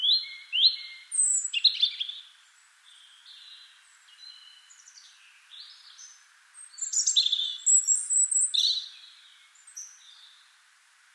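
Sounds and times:
European robin singing: 0.0 - 10.6.

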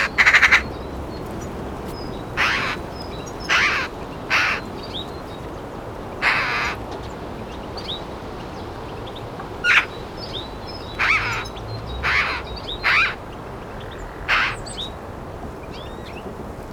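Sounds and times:
Eurasian magpie calls: 0.0 - 0.8, 2.3 - 4.7, 6.2 - 6.8, 9.6 - 10.0, 10.8 - 15.0.

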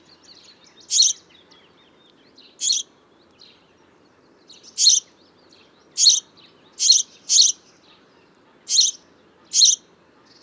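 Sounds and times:
quiet low background noise: 0.0 - 10.4
house sparrow calling with short harsh chirps: 0.9 - 1.2, 2.6 - 2.9, 4.7 - 5.0, 6.0 - 7.6, 8.7 - 9.8.

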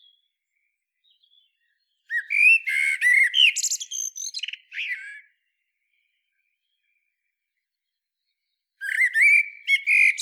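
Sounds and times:
Common blackbird Turdus merula singing: 1.0 - 5.5, 8.8 - 10.1.

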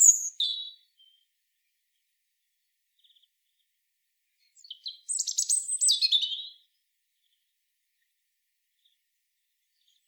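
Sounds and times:
European robin singing, Erithacus rubecula: 0.0 - 1.2, 4.5 - 6.6.

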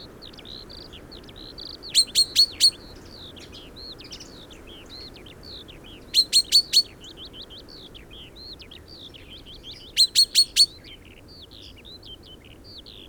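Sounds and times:
steady background noise: 0.0 - 13.0
common chaffinch calls: 1.8 - 2.8, 5.8 - 7.4, 9.4 - 10.7.

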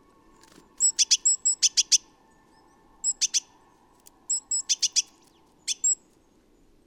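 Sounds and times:
great tit Parus major giving ticking notes and thin whistles: 0.8 - 2.0, 3.0 - 3.5, 4.2 - 6.1.

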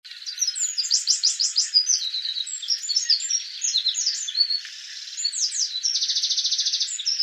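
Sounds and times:
Eurasian wren Troglodytes troglodytes singing: 0.0 - 7.2.

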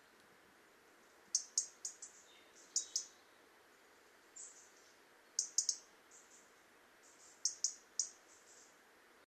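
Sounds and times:
faint hiss: 0.0 - 9.2
European robin tick calls: 1.3 - 3.3, 4.3 - 8.8.

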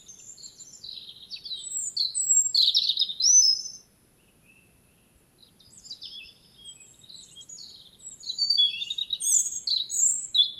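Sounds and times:
European robin Erithacus rubecula warbling song: 0.0 - 10.5.

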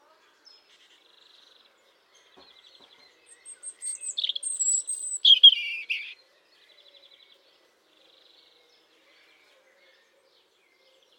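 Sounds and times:
European robin Erithacus rubecula singing: 3.2 - 6.2.

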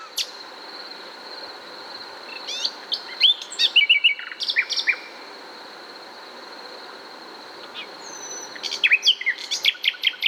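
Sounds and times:
common nightingale Luscinia megarhynchos singing: 2.3 - 5.1, 7.7 - 10.2.

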